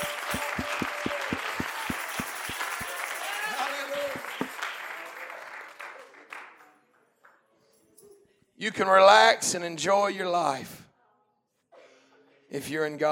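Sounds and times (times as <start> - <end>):
church congregation crowd noise: 0.0 - 4.8
church congregation clapping in a steady rhythm during a sermon: 0.0 - 6.5
speech: 8.6 - 10.8, 12.5 - 13.0.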